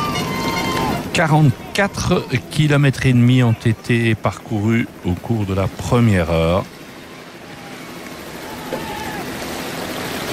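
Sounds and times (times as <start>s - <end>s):
river water rushing: 0.0s - 10.3s
speech: 1.2s - 6.8s.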